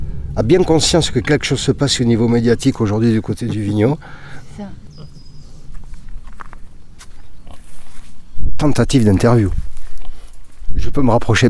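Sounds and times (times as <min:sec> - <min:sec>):
speech: 0:00.4 - 0:04.8, 0:08.6 - 0:09.6, 0:10.8 - 0:11.4
pig grunting while nibbling: 0:04.6 - 0:05.6
crunchy crackles and shuffling: 0:05.0 - 0:11.4.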